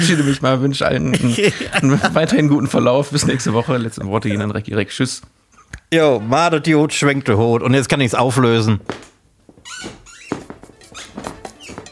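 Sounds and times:
speech: 0.0 - 9.1
laughter: 1.0 - 4.2
chair squeaking: 8.7 - 11.9.

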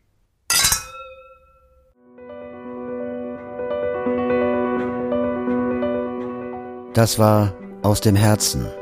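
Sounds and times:
glasses clinking in a toast: 0.5 - 1.8
soft layered music: 1.9 - 8.8
speech: 7.0 - 8.8.

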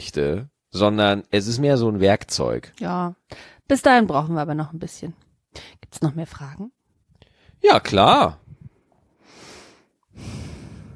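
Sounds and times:
speech: 0.0 - 6.8, 7.6 - 8.5
heavy breathing: 9.2 - 10.9.

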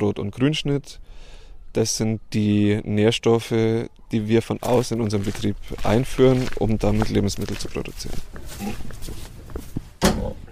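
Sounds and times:
speech: 0.0 - 9.2
pigs snorting in a barn: 8.2 - 9.1
pigs grunting in a barn: 8.5 - 9.0.

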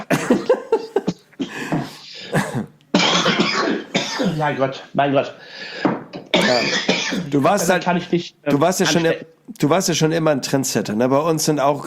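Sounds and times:
person coughing: 0.0 - 4.6, 6.3 - 7.8
speech: 4.4 - 5.9, 6.5 - 11.8.

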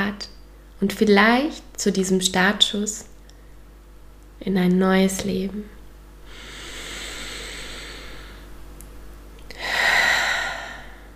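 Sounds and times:
speech: 0.2 - 3.1, 4.4 - 5.8
deep breath in: 6.3 - 8.5, 9.6 - 11.1.

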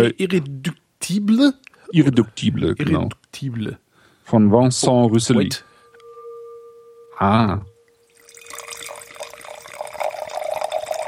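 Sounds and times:
speech: 0.0 - 5.7, 7.2 - 7.7
faint steady tone: 4.8 - 11.0
wine pouring into a glass: 8.0 - 11.0.

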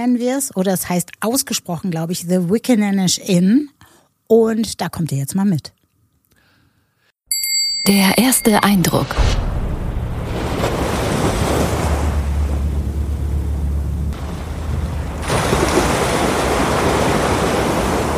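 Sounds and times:
speech: 0.0 - 5.8, 7.8 - 9.4
wind on the rugged west coast of Vancouver Island: 8.4 - 18.1
ocean waves on the rugged west coast of Vancouver Island: 8.5 - 18.1.

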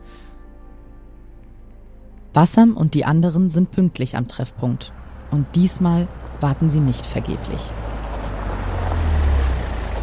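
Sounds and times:
speech: 2.4 - 7.9
engines of cars arriving at a meeting point: 2.6 - 10.0.

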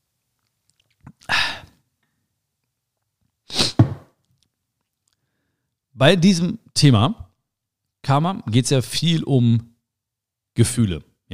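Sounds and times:
slurping sips of carrot juice: 3.5 - 3.9
speech: 6.0 - 7.2, 8.0 - 9.7, 10.6 - 11.3.

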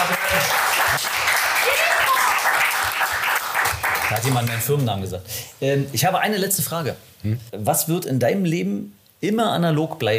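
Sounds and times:
crowd applauding: 0.0 - 4.9
faint voices and whoops: 1.6 - 2.5
speech: 4.1 - 10.1.

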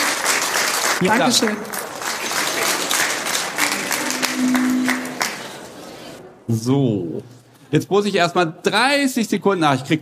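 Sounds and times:
audience applause: 0.0 - 6.2
speech: 1.0 - 1.9, 6.5 - 9.9
faint sustained tone: 3.9 - 5.7.

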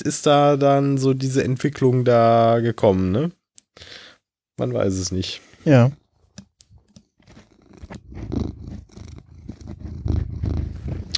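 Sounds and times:
speech: 0.0 - 4.0, 4.6 - 6.0
faint scratchy rustling: 7.2 - 11.1
cat purring on lap: 7.3 - 11.1.

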